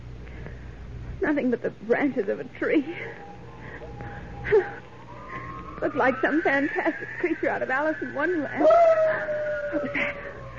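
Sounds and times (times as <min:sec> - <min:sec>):
speech: 0:01.2 - 0:03.3, 0:04.4 - 0:04.8, 0:05.8 - 0:10.3
wolf howling: 0:03.1 - 0:10.5.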